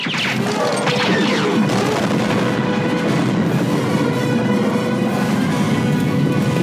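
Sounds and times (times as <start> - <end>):
movie-style explosion of a shield generator: 0.0 - 5.9
crackling debris: 0.0 - 6.6.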